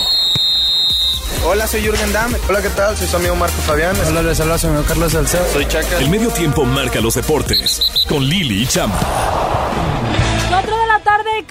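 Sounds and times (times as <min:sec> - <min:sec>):
referee's whistle blast: 0:00.0 - 0:01.4, 0:07.5 - 0:08.4
speech: 0:01.5 - 0:11.4.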